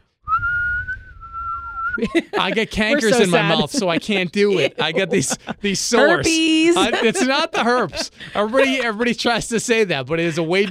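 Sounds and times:
person whistling one long note: 0:00.2 - 0:02.0
laughter: 0:02.0 - 0:10.6
speech: 0:02.0 - 0:10.6.

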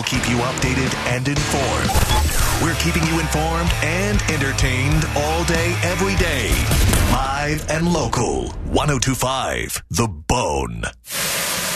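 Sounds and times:
speech: 0:00.0 - 0:11.3
food sizzling in a hot pan: 0:11.1 - 0:11.7.

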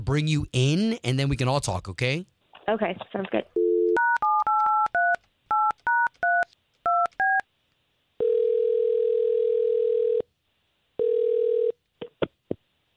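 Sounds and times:
speech: 0:00.0 - 0:03.6
long steady telephone tones: 0:03.6 - 0:07.4, 0:08.2 - 0:10.3, 0:11.0 - 0:11.8
touch-tone telephone keypad beeps: 0:03.6 - 0:07.4.

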